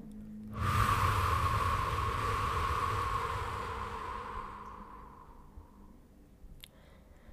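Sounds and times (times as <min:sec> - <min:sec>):
long forceful exhale: 0:00.5 - 0:05.9.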